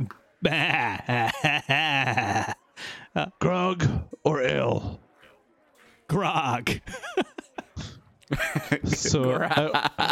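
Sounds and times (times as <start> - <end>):
speech: 0.0 - 5.0, 6.1 - 7.4, 8.3 - 10.0
person's voice imitating a sheep bleat: 0.4 - 1.3
laughter: 0.4 - 3.0, 6.4 - 10.0.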